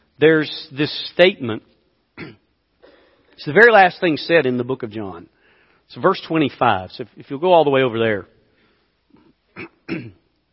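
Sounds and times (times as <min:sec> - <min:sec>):
speech: 0:00.2 - 0:02.3, 0:03.4 - 0:05.3, 0:05.9 - 0:08.3, 0:09.6 - 0:10.2
person with an irritated throat clearing it: 0:02.2 - 0:02.5, 0:09.2 - 0:10.3.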